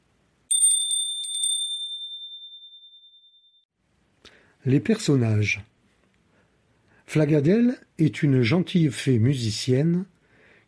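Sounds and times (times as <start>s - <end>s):
small bell ringing with a bright high metallic tone: 0.5s - 3.7s
speech: 4.6s - 5.7s, 7.1s - 10.1s.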